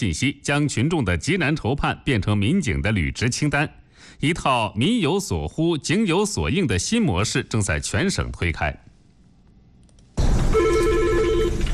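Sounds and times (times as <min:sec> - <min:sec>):
speech: 0:00.0 - 0:08.9
telephone ringing before a police public-opinion hotline call: 0:10.5 - 0:11.7.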